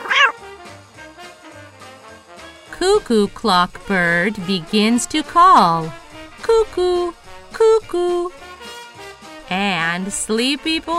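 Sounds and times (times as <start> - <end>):
sleepy cat meowing, just woken: 0.0 - 0.4
speech: 2.8 - 8.4, 9.5 - 10.9.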